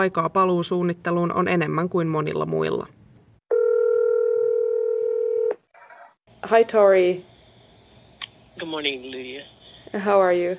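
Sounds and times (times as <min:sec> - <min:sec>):
speech: 0:00.0 - 0:03.0, 0:06.4 - 0:07.3, 0:08.6 - 0:10.5
steady electronic telephone tone: 0:03.5 - 0:05.6.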